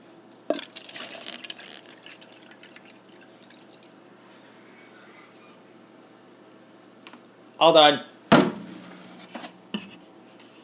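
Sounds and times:
alkaline water pouring into a cup: 0:00.5 - 0:04.0
speech: 0:07.6 - 0:08.1.

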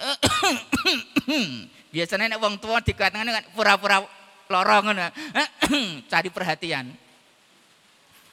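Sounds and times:
person coughing with groan-like tail: 0:00.0 - 0:01.7, 0:05.2 - 0:06.0
speech: 0:01.3 - 0:07.0.

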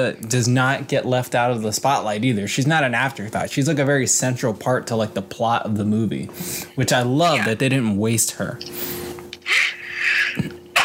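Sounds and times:
speech: 0:00.0 - 0:09.8, 0:10.4 - 0:10.6
person sneezing: 0:09.5 - 0:10.8.

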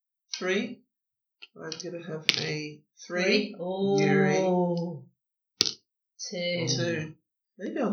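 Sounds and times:
speech: 0:00.4 - 0:00.8, 0:01.4 - 0:05.1, 0:06.2 - 0:07.9
dice landing on a hard surface: 0:05.6 - 0:05.8.

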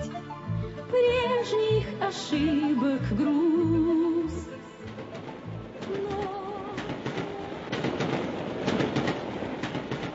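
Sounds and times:
speech: 0:01.0 - 0:04.1
moving train wheels clattering over rail joints: 0:04.8 - 0:10.1.

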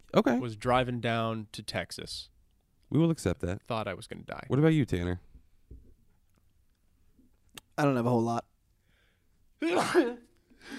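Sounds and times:
speech: 0:00.1 - 0:02.3, 0:02.9 - 0:05.3, 0:07.8 - 0:08.5, 0:09.6 - 0:10.7
person sneezing: 0:09.6 - 0:10.7
breathy sound: 0:10.5 - 0:10.7.

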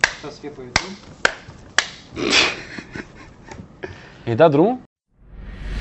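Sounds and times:
sharp hand claps: 0:00.0 - 0:02.0
speech: 0:00.2 - 0:01.5, 0:02.1 - 0:02.8, 0:04.3 - 0:04.9.

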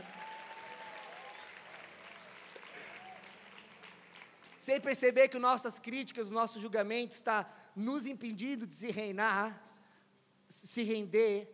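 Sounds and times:
large audience applauding: 0:00.0 - 0:04.8
speech: 0:04.7 - 0:09.7, 0:10.5 - 0:11.5.

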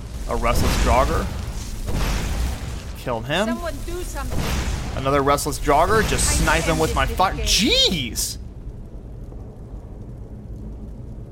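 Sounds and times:
video game lightning bolt spell with thunder-like rumble: 0:00.0 - 0:08.4
speech: 0:00.3 - 0:02.0, 0:03.0 - 0:08.4.

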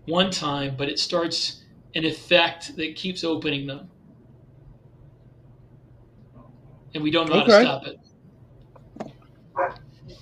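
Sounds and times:
speech: 0:00.0 - 0:03.9, 0:06.9 - 0:08.0, 0:09.6 - 0:10.2
low steady hum: 0:00.0 - 0:10.2
dog barking: 0:09.6 - 0:09.8.

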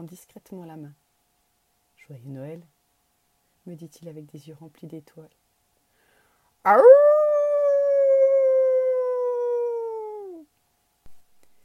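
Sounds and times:
speech: 0:00.0 - 0:01.0, 0:02.1 - 0:02.8, 0:03.7 - 0:05.4, 0:06.6 - 0:07.1
dog's long plaintive howl: 0:06.7 - 0:10.4.

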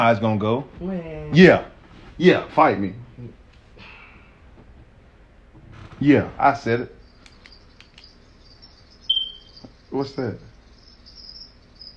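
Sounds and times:
speech: 0:00.0 - 0:03.4, 0:06.0 - 0:07.0, 0:09.9 - 0:10.5
low hum: 0:00.0 - 0:11.9
crickets chirping: 0:06.0 - 0:11.9.

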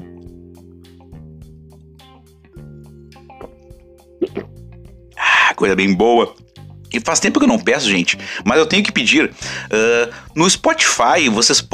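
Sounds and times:
sipping water from a glass: 0:03.3 - 0:04.6
speech: 0:05.6 - 0:11.7.

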